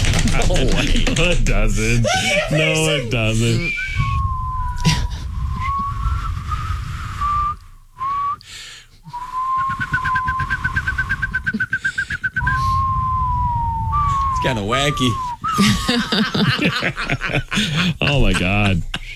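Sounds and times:
low rumble: 0:00.0 - 0:17.6
laughter: 0:00.1 - 0:06.4, 0:09.1 - 0:12.6, 0:13.9 - 0:19.1
speech: 0:00.4 - 0:03.8, 0:14.5 - 0:18.9
person whistling a wavering siren-like tone and trill: 0:03.5 - 0:16.1.

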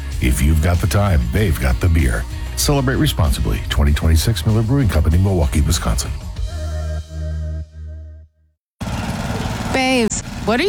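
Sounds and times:
speech: 0:00.2 - 0:06.3, 0:10.0 - 0:10.6
lawn mower engine droning: 0:08.8 - 0:09.7.

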